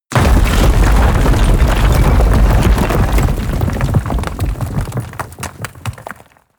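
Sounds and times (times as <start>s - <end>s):
large roll dropping: 0.1s - 6.3s.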